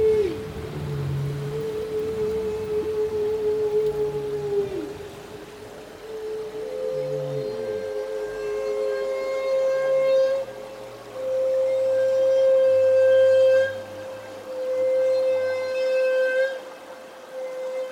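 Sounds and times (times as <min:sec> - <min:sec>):
faint low rumble: 0:00.0 - 0:06.1
humpback whale holding long steady tones: 0:00.0 - 0:17.9.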